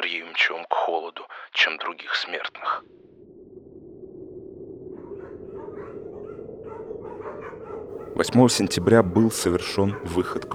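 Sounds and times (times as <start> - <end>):
speech: 0.1 - 3.0, 8.2 - 10.5
steady low rumble: 2.9 - 8.6
pack of polar expedition sled dogs barking and whimpering: 5.0 - 10.5.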